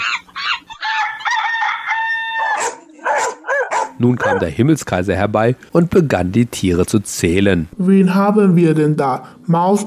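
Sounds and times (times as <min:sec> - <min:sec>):
rooster crowing loudly: 0:00.0 - 0:04.4
speech: 0:04.0 - 0:09.8.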